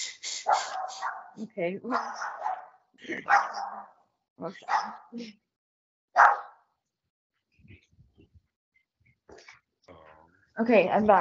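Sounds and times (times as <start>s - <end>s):
speech: 0.4s - 2.4s, 3.0s - 5.4s, 6.2s - 6.4s, 10.6s - 11.2s
dog barking at someone walking by the door: 0.4s - 4.0s, 4.6s - 5.1s, 6.1s - 6.7s.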